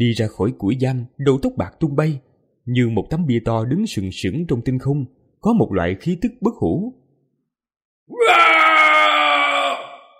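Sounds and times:
speech: 0:00.0 - 0:07.0, 0:08.1 - 0:08.6
white-haired old man screaming with face turned up to the sky: 0:08.1 - 0:10.1.

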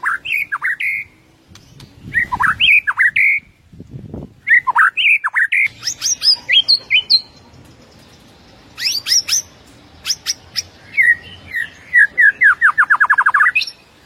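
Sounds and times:
white-rumped shama singing bright whistled phrases: 0:00.0 - 0:01.2, 0:02.0 - 0:03.6, 0:04.4 - 0:07.3, 0:08.8 - 0:14.0.

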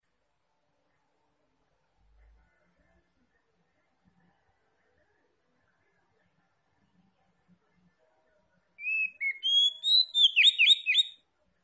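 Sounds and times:
Oriental magpie-robin singing vigorously with whistled notes: 0:08.8 - 0:11.2.

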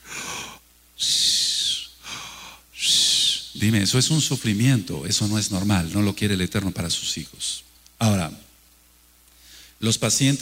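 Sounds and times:
voice imitating wheezing asthmatic breathing on the exhale: 0:00.0 - 0:03.4
speech: 0:03.6 - 0:08.2, 0:09.8 - 0:10.3.

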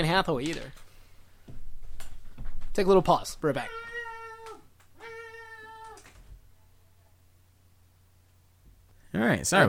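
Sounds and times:
speech: 0:00.0 - 0:00.8, 0:02.8 - 0:03.9, 0:09.1 - 0:09.6
cat meowing: 0:03.6 - 0:06.3.

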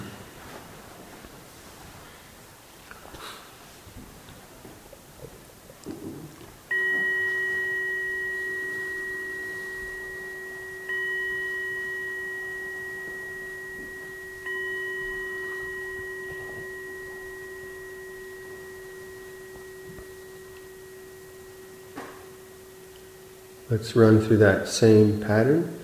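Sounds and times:
Zen clock chiming: 0:06.7 - 0:25.5
speech: 0:23.7 - 0:25.8.

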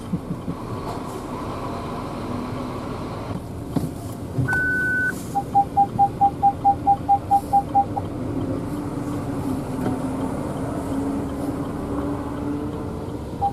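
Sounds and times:
low constant rumble of traffic: 0:00.0 - 0:13.5
reversing beeps from a car backing up in a traffic jam: 0:04.5 - 0:08.0.

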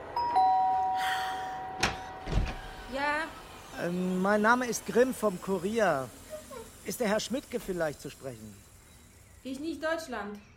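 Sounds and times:
doorbell ringing: 0:00.2 - 0:02.3
speech: 0:03.3 - 0:06.2, 0:06.9 - 0:08.6, 0:09.4 - 0:10.5.

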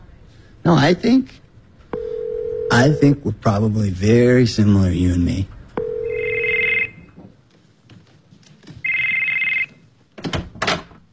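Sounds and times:
speech: 0:00.6 - 0:01.4, 0:02.8 - 0:05.6
telephone ringing with electronic trilling rings: 0:02.0 - 0:03.2, 0:05.8 - 0:07.1, 0:08.8 - 0:09.8.

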